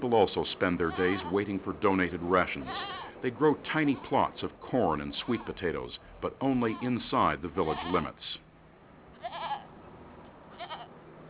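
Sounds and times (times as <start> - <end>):
faint steady hiss: 0.0 - 11.2
speech: 0.1 - 8.4
goat bleating in a village: 0.8 - 1.5, 2.5 - 3.2, 5.1 - 5.7, 6.6 - 8.2, 9.2 - 9.7, 10.5 - 10.9.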